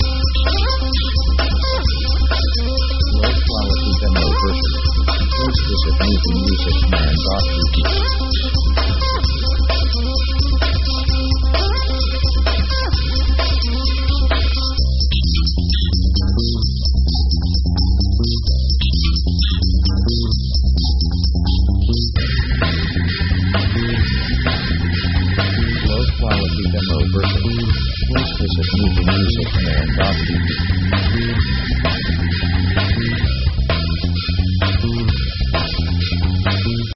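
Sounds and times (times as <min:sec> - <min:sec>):
synth metal action break music: 0:00.0 - 0:36.9.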